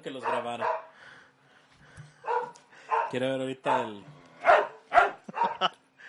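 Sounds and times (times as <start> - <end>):
speech: 0.0 - 0.9, 3.1 - 4.2
dogs barking and yelping in a fight outside: 0.2 - 0.9, 2.1 - 5.7.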